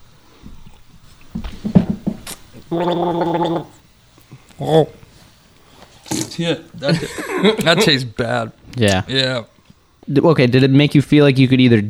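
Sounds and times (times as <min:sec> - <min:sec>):
person gargling a drink: 0:02.7 - 0:03.8
speech: 0:02.7 - 0:03.8, 0:04.6 - 0:05.0, 0:06.1 - 0:09.5, 0:10.1 - 0:11.8
laughter: 0:06.4 - 0:08.5.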